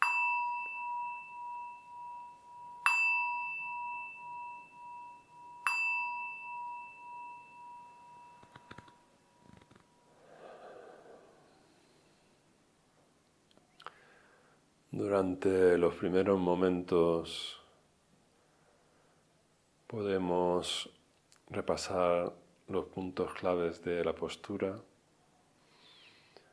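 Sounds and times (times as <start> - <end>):
meditation bell struck and ringing: 0.0 - 10.2
faint breathy rustling: 10.1 - 12.5
speech: 15.0 - 17.6, 19.9 - 24.9.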